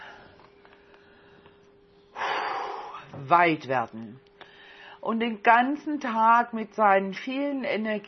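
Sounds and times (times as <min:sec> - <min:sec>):
human breath for a breathing exercise: 0:00.0 - 0:03.1, 0:04.4 - 0:05.0
speech: 0:03.2 - 0:04.3, 0:05.0 - 0:08.0.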